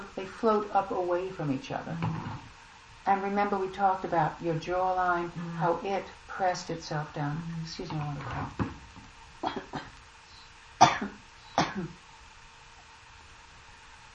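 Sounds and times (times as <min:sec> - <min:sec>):
speech: 0:00.2 - 0:02.2, 0:03.1 - 0:08.7, 0:09.4 - 0:09.8, 0:11.8 - 0:12.0
person coughing in short harsh bursts: 0:09.4 - 0:09.9, 0:10.8 - 0:12.0.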